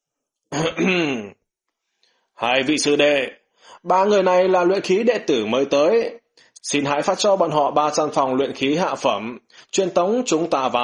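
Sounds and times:
man clearing throat: 0.5 - 1.3
speech: 0.5 - 1.4, 2.4 - 10.8.

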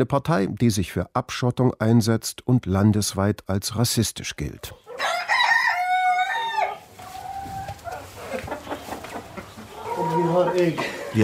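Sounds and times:
speech: 0.0 - 5.3, 10.6 - 11.2
brooding hen clucking on a farm in southern Sweden: 4.6 - 11.2.

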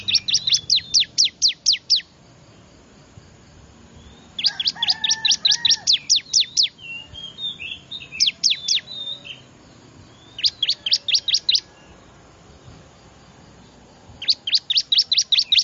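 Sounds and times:
soft whistled bird notes: 0.0 - 2.1, 4.0 - 12.8, 14.2 - 15.6
bar-winged prinia lure call of high downward-slurred chirps: 0.0 - 15.6.

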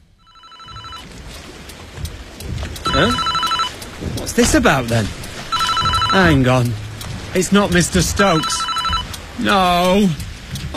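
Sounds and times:
mobile phone ringing with electronic ringtone: 0.2 - 1.1, 2.9 - 3.7, 5.5 - 6.3, 8.4 - 9.1
speech: 3.0 - 3.4, 4.3 - 5.2, 6.1 - 8.7, 9.4 - 10.7.

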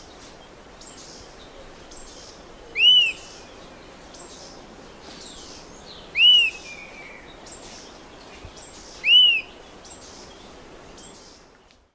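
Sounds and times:
background hiss: 0.0 - 11.9
bird repeating a short arched whistle: 2.8 - 3.2, 6.2 - 6.6, 9.0 - 9.5.

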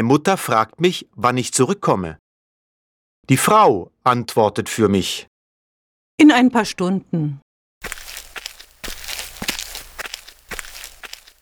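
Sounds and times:
speech: 0.0 - 2.2, 3.2 - 5.3, 6.2 - 7.4
footsteps of people walking through a garden toward a car: 7.8 - 11.4.

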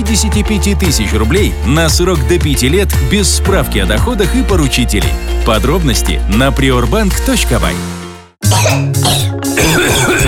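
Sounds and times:
speech: 0.1 - 10.2
person coughing harshly: 8.4 - 10.2.

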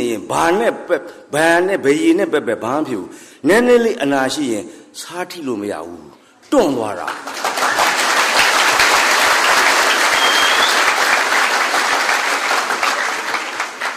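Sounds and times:
speech: 0.1 - 7.5
audience applause: 7.2 - 13.9.

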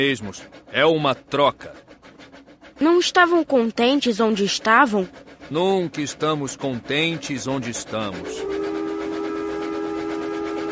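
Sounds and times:
speech: 0.0 - 1.9, 2.8 - 8.5
illuminated train sounding its whistle: 7.6 - 10.7.

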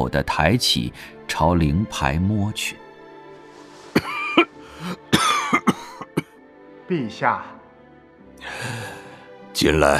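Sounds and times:
speech: 0.0 - 2.8, 6.9 - 7.6, 9.6 - 9.9
man coughing softly: 3.9 - 6.4.

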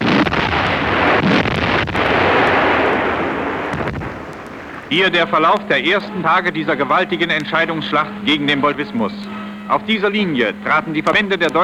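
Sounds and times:
sharp cracks and bursts: 0.0 - 5.8
artillery batteries of all calibres opening fire against Soviet positions: 0.0 - 6.1
speech: 4.9 - 11.6.

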